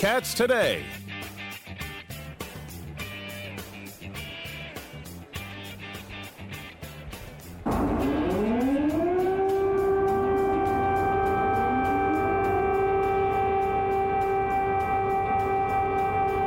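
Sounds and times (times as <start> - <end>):
speech: 0.0 - 1.1
air raid siren wailing in a city: 7.6 - 16.4.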